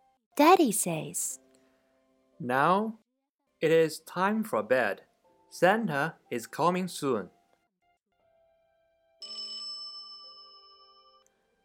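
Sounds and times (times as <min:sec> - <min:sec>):
speech: 0:00.4 - 0:01.4, 0:02.4 - 0:03.0, 0:03.6 - 0:07.4
bright metallic bell ringing: 0:09.2 - 0:11.5.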